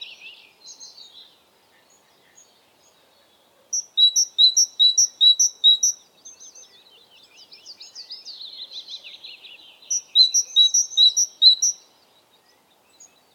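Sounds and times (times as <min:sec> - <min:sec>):
Parus major calling: 0:03.7 - 0:06.0, 0:09.9 - 0:11.9.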